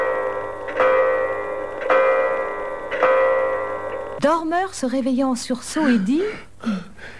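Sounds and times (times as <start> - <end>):
clock striking the hour with heavy bell-like strokes: 0.0 - 4.2
sustained humming resonance: 0.0 - 4.2
speech: 4.2 - 7.1.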